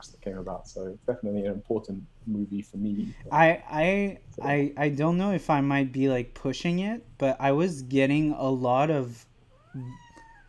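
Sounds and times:
speech: 0.0 - 10.0
domestic cat meowing loudly: 9.6 - 10.4.

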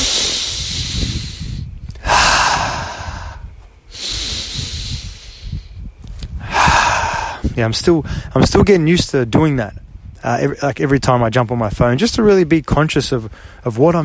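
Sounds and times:
slow deep breaths before picking up a phone: 0.0 - 8.4, 13.3 - 13.7
speech: 7.6 - 14.0.

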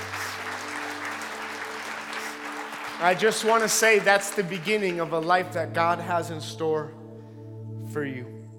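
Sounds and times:
audience clapping: 0.0 - 5.7
speech: 3.0 - 7.0, 7.9 - 8.4.

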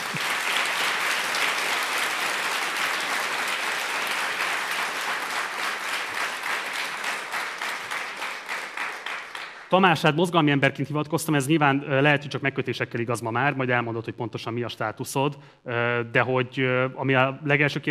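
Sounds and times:
audience applauding: 0.0 - 9.9
speech: 9.7 - 17.9.

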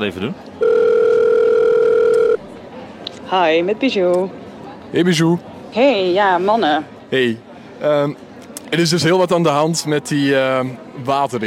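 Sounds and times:
speech: 0.0 - 0.6, 3.3 - 11.4
telephone tone as a call goes through: 0.6 - 2.4.

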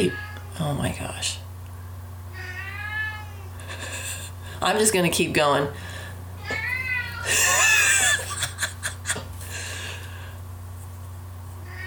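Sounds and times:
male pet cat meowing: 0.0 - 0.6, 2.3 - 3.6, 6.4 - 7.8, 11.6 - 11.8
speech: 0.0 - 1.4, 4.6 - 5.9, 7.2 - 7.6
steady low electrical hum: 0.0 - 11.8
laughter: 7.3 - 9.3.

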